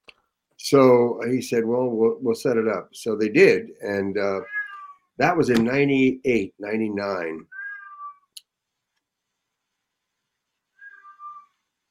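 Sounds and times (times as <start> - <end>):
speech: 0.6 - 4.6, 5.2 - 7.5
angry cat shut in a room meowing to be let out: 4.2 - 5.2, 7.4 - 8.4, 10.7 - 11.6.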